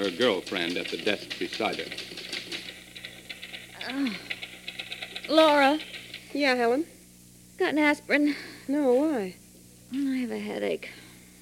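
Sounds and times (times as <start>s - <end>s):
speech: 0.0s - 2.2s, 3.9s - 4.3s, 5.3s - 7.0s, 7.6s - 11.4s
typewriter keys clattering at a desk in a large manufacturing plant: 0.0s - 6.3s.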